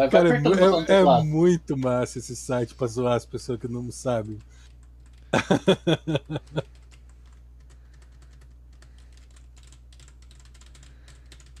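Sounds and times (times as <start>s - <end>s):
speech: 0.0s - 4.7s, 5.3s - 6.8s
steady low hum: 0.0s - 11.5s
rapid typing on a computer keyboard: 4.2s - 5.4s, 6.1s - 11.5s
laughter: 5.4s - 6.6s.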